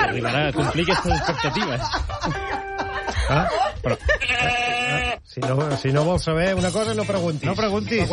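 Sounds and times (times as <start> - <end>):
laughter: 0.0 - 6.0
speech: 0.2 - 2.7, 3.3 - 8.1
goat bleating: 4.0 - 5.2.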